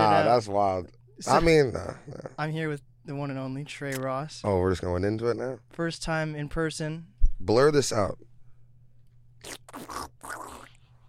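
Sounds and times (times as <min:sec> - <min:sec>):
speech: 0:00.3 - 0:08.3, 0:09.4 - 0:10.6
wet slurping: 0:09.4 - 0:11.0.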